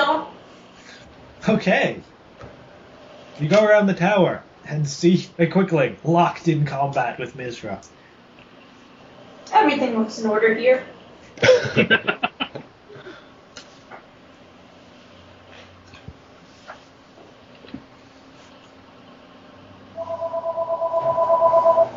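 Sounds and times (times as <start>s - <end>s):
speech: 1.5s - 2.1s, 3.4s - 8.0s, 9.6s - 12.7s
laughter: 11.4s - 12.7s
landline home telephone ringing with an electronic warble: 20.0s - 21.9s.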